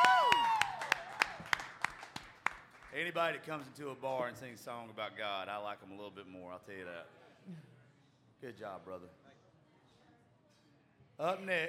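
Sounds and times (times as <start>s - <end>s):
bright whistle-like cheer: 0.0s - 1.0s
small bar audience applauding a singer: 0.0s - 3.2s
speech: 3.0s - 7.7s, 8.4s - 9.2s, 11.2s - 11.6s.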